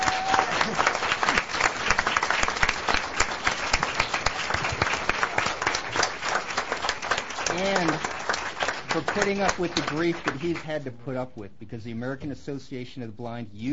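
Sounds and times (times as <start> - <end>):
large audience applauding: 0.0 - 10.6
speech: 9.2 - 13.7.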